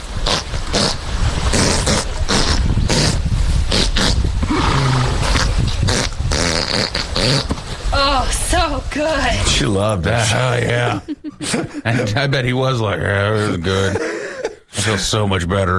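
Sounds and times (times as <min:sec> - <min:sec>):
horse passing gas in sputtering flapping blasts: 0:00.0 - 0:08.0
speech: 0:08.7 - 0:14.1, 0:14.8 - 0:15.7
laughter: 0:10.0 - 0:15.5.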